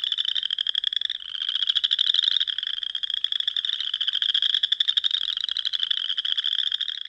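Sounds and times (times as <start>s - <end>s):
chorus frog mating call: 0.0s - 7.0s.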